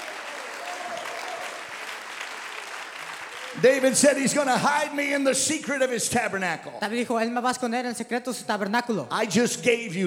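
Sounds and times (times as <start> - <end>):
audience clapping hands: 0.0 - 5.2
speech: 3.6 - 10.0.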